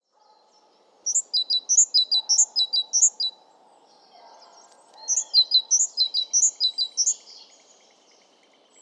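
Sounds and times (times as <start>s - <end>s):
faint background noise: 0.0s - 8.8s
great tit Parus major singing two-note phrases: 0.4s - 8.8s.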